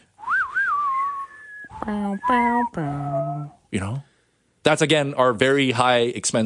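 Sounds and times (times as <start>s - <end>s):
whistled Western-style movie theme melody: 0.2s - 3.5s
speech: 1.8s - 6.4s.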